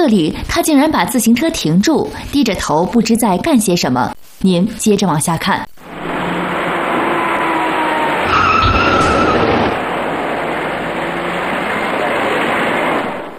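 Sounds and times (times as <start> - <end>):
speech: 0.0 - 5.7
steady broadband road noise: 5.8 - 13.3
small silver passenger car braking and skidding: 5.9 - 13.3.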